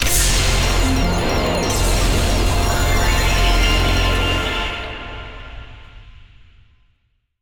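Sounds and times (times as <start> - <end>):
big win attention sound: 0.0 - 5.2.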